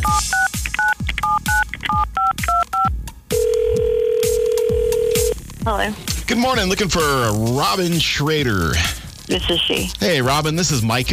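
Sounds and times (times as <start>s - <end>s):
telephone keypad tones as a radio host dials a listener: 0.0s - 5.3s
speech: 5.6s - 11.1s.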